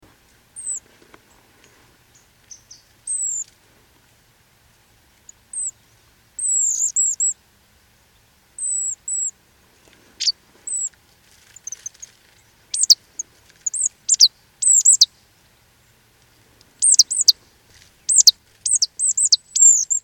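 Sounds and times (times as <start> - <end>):
background hiss: 0.0 - 20.0
Poecile palustris marsh tit calls: 0.6 - 0.8, 2.5 - 3.5, 5.3 - 5.8, 6.4 - 7.4, 8.6 - 9.3, 10.2 - 15.1, 16.8 - 20.0.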